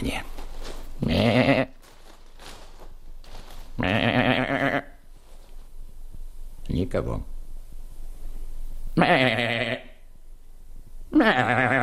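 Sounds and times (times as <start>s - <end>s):
person imitating a young goat bleating: 1.0s - 1.8s, 3.8s - 5.0s, 9.0s - 10.0s, 11.1s - 11.8s
speech: 6.9s - 7.4s, 9.0s - 9.5s.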